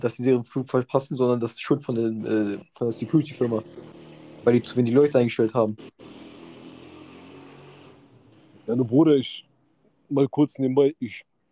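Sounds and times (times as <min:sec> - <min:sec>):
speech: 0:00.0 - 0:06.2, 0:08.7 - 0:09.5, 0:10.1 - 0:11.3
loud car or motorcycle engine rumbling in Turkey: 0:02.0 - 0:09.0.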